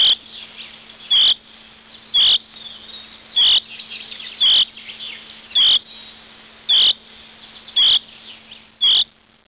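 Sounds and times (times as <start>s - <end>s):
Eurasian chaffinch call: 0.0s - 9.1s
faint steady low hum: 0.0s - 9.4s.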